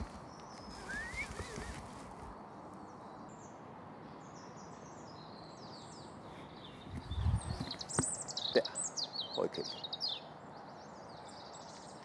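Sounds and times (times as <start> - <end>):
horses shifting about in an outdoor paddock: 0.0 - 2.4
birds chirping overhead: 0.0 - 12.0
speech: 9.4 - 10.0.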